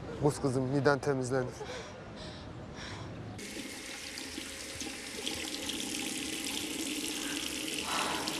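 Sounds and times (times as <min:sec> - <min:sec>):
speech: 0:00.2 - 0:01.9
water running from a tap while someone washes their face: 0:03.4 - 0:08.3.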